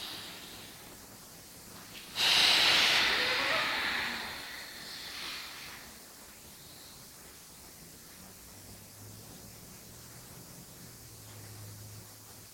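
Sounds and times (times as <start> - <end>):
long forceful exhale during a breathing exercise: 2.1 - 5.9.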